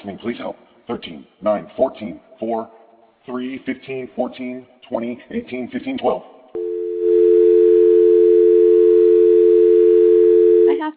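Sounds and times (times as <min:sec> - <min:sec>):
speech: 0:00.0 - 0:06.3, 0:10.8 - 0:10.9
telephone dial tone after a call is disconnected: 0:06.6 - 0:10.7.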